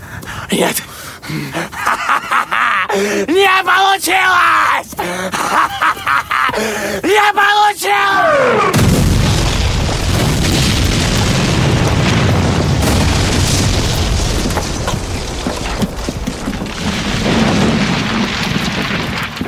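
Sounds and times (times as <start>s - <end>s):
speech: 0.5s - 8.8s
laughter: 1.5s - 3.1s, 5.3s - 6.7s
dugout bunker exploding in a war film: 8.3s - 19.4s
crackling debris from a bunker explosion: 8.7s - 19.4s.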